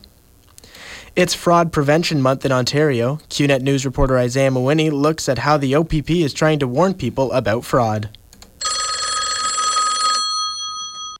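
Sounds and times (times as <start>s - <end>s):
speech: 1.2s - 8.2s
old-style telephone bell ringing: 8.6s - 11.1s.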